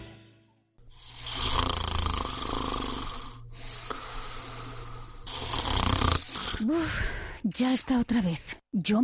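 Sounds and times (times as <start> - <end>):
loud rasping snoring: 0.9 - 7.3
speech: 6.7 - 9.0.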